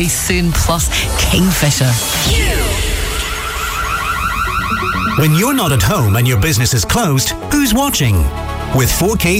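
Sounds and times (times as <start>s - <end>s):
speech: 0.0s - 2.9s, 4.8s - 9.3s
loud electronic burglar alarm wailing: 3.3s - 6.6s.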